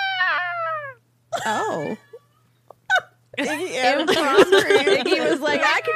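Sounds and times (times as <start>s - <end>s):
cat meowing: 0.0s - 1.0s
faint steady hum: 0.0s - 5.9s
speech: 1.4s - 2.1s, 3.4s - 5.9s.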